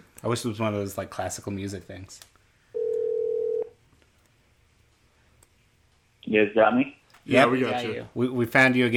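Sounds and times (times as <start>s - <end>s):
speech: 0.2s - 2.3s, 6.3s - 8.9s
telephone ringback tone: 2.8s - 3.7s.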